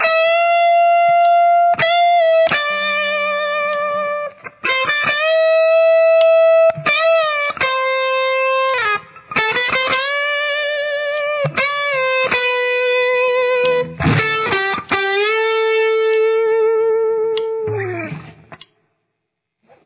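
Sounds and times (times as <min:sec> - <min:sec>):
intro lead guitar: 0:00.0 - 0:18.6.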